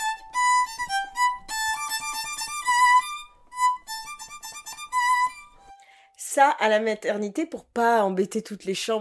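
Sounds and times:
violin played with a heavy lead practice mute: 0.0 - 6.1
speech: 6.4 - 8.9.

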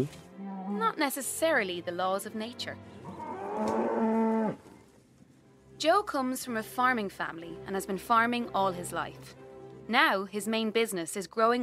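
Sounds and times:
speech: 0.0 - 0.2, 0.9 - 3.0, 5.8 - 11.6
cow mooing at a bull on a farm: 3.0 - 4.6.

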